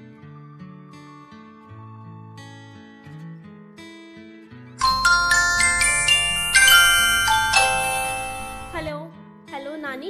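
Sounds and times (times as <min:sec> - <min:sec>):
phone ringtone with bright chiming bell-like melody: 0:04.8 - 0:08.9.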